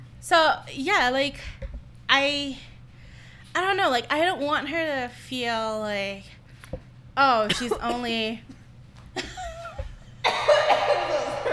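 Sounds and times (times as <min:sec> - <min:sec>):
speech: 0:00.2 - 0:02.7, 0:03.6 - 0:06.3, 0:07.2 - 0:08.5
person coughing after inhaling a drink: 0:07.5 - 0:08.2, 0:10.2 - 0:11.5
laughter: 0:09.2 - 0:11.5.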